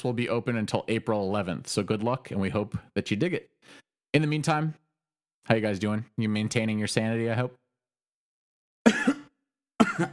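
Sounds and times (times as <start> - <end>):
speech: 0.0 - 4.8, 5.4 - 7.6, 10.0 - 10.1
person coughing into the microphone: 8.9 - 10.1.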